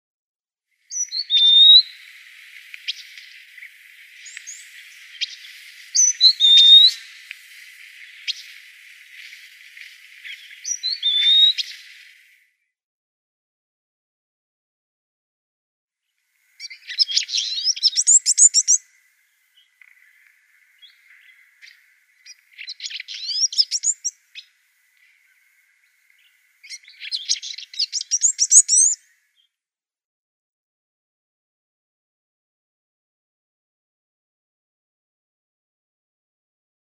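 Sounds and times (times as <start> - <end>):
Red-billed Firefinch singing: 0.9 - 12.4, 16.6 - 18.8, 19.5 - 29.0.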